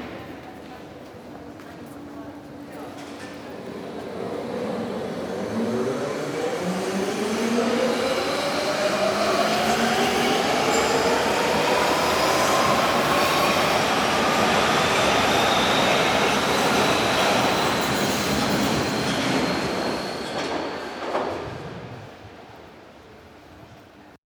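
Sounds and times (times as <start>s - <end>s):
U-Bahn train departing: 0.7s - 23.8s
U-Bahn train doors closing: 7.3s - 22.1s.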